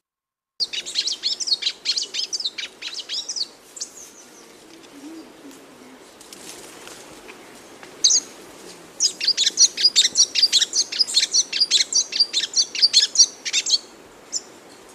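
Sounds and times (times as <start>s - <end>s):
magpie tanager singing rapid high chirps: 0.6s - 4.2s, 8.0s - 8.3s, 9.0s - 14.5s.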